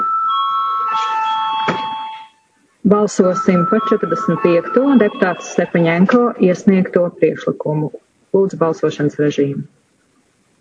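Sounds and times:
parliament chamber bell ringing before a vote: 0:00.0 - 0:02.5, 0:03.2 - 0:06.2
speech: 0:02.9 - 0:09.8.

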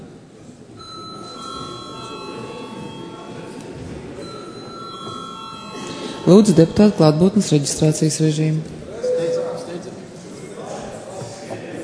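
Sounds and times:
murmuring parliament hall: 0:00.0 - 0:11.8
parliament chamber electric bell ringing: 0:00.8 - 0:03.6, 0:04.2 - 0:07.9
speech: 0:06.3 - 0:08.8.

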